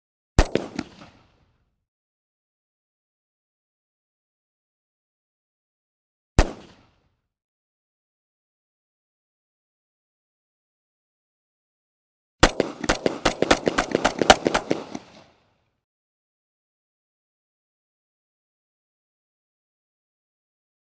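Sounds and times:
.45 ACP gunshots in rapid fire: 0:12.4 - 0:15.2.

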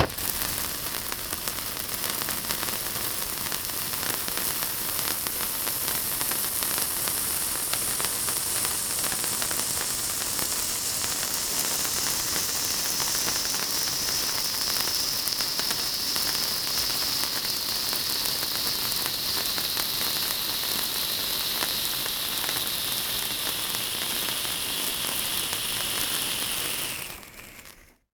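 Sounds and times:
birthday cake fireworks: 0:00.0 - 0:28.0.

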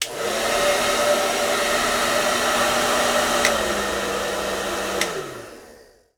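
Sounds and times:
blow dryer in a bathroom: 0:00.0 - 0:06.1.

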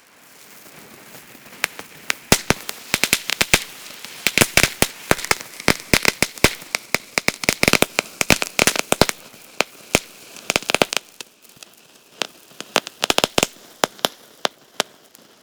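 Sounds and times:
firework: 0:00.0 - 0:15.4.

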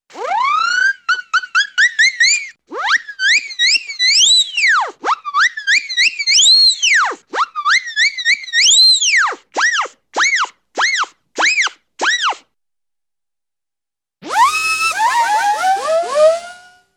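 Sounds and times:
rapid twirling cartoon cyclone whistles: 0:00.1 - 0:12.4, 0:14.2 - 0:16.9.

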